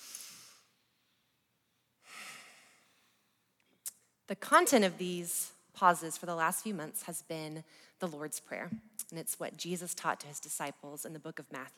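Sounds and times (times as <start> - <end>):
slow deep breathing: 2.0 - 3.4
speech: 4.3 - 11.7.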